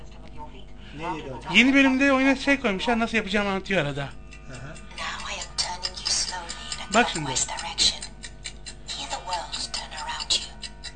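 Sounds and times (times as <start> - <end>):
speech: 0.5 - 4.2, 6.9 - 7.9
clock ticking: 4.1 - 10.9.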